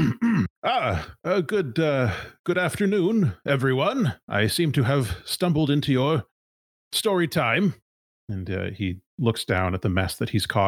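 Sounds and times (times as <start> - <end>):
voice imitating a little cough: 0.0 - 1.2
speech: 0.1 - 6.3, 6.9 - 10.6.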